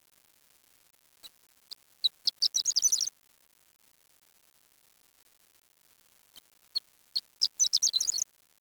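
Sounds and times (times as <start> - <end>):
bird singing high-pitched chirps and twittering trills: 2.4 - 3.1, 7.4 - 8.2.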